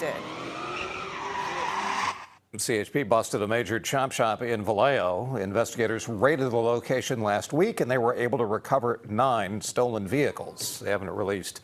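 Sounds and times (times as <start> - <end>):
semi-truck tires skidding at a street sideshow: 0.0 - 2.4
speech: 2.5 - 11.6.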